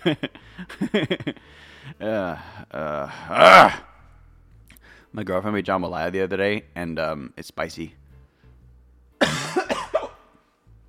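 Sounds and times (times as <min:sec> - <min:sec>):
speech: 0:00.0 - 0:03.9, 0:05.1 - 0:08.0
person coughing: 0:09.2 - 0:10.3.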